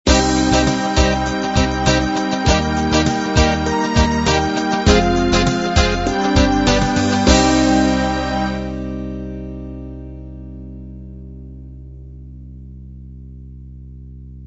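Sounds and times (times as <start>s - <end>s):
pop ballad ending: 0.1s - 10.4s.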